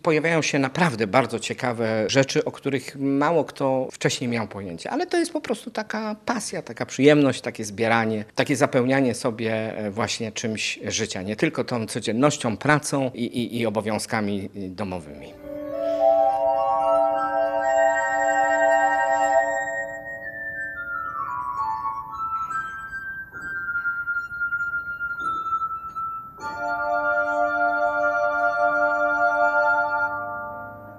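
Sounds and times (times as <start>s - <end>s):
speech: 0.0s - 15.5s
glass harp of rubbed wine glasses playing chords: 15.3s - 30.9s.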